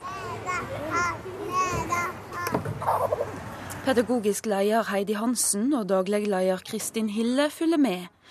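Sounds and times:
young children chattering and shouting in a kindergarten: 0.0 - 3.5
speech: 3.9 - 8.2.

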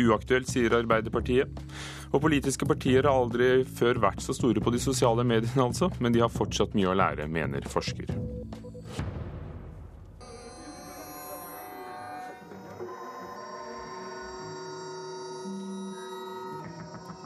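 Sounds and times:
speech: 0.0 - 9.1
layered sustained electronic tones of a chess game rendered as sound: 10.2 - 17.2
ringing beeps: 10.2 - 17.2.

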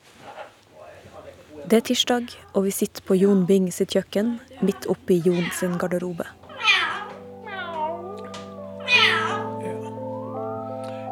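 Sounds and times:
speech: 1.6 - 6.4
steady tonal hum: 1.7 - 11.1
caged parrot meowing like a cat: 5.4 - 5.8, 6.4 - 8.0, 8.8 - 9.6
parrot squawky chatter: 6.5 - 7.8.

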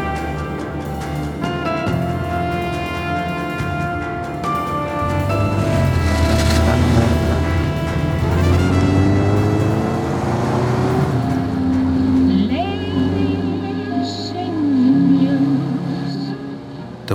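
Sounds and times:
rushing wind noise around open-top car: 0.1 - 12.2
red two-seater sports car engine driving with roof down: 4.5 - 17.1.

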